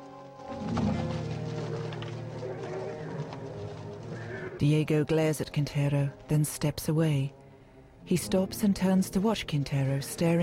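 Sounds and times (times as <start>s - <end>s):
horses with mounted soldiers stamping and shifting hooves: 0.0s - 6.7s
speech: 4.6s - 7.4s, 8.0s - 10.4s.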